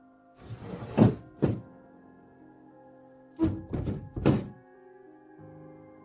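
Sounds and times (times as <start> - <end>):
old small window being forced open: 0.4 - 1.7, 3.4 - 4.6.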